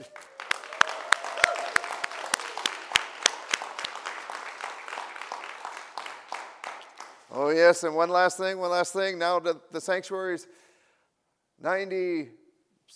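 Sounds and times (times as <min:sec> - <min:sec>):
group of people clapping their hands: 0:00.0 - 0:07.6
speech: 0:07.4 - 0:10.6, 0:11.6 - 0:12.9.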